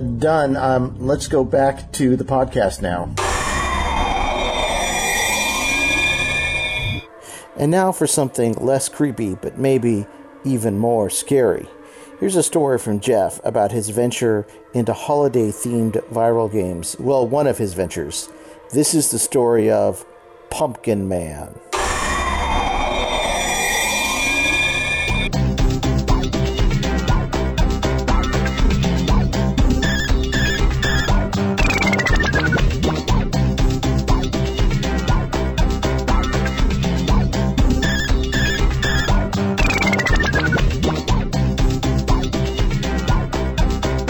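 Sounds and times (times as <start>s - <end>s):
speech: 0.2s - 3.2s, 7.6s - 21.7s
sweeping siren-like tones: 3.2s - 7.1s, 21.7s - 25.3s, 29.8s - 32.9s, 37.1s - 40.8s
chiptune 8-bit video game title screen music: 25.0s - 44.0s.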